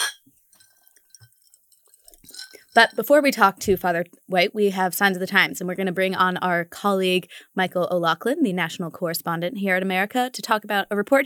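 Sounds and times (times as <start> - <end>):
sharp glass clink: 0.0 - 1.3
sipping and swallowing a bourbon-based cocktail: 0.6 - 3.0
speech: 2.8 - 11.2.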